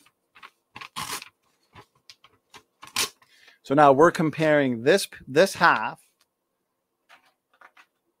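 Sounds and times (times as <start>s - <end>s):
sheet of paper being ripped apart: 0.8s - 1.3s, 2.8s - 3.2s
speech: 3.7s - 6.0s.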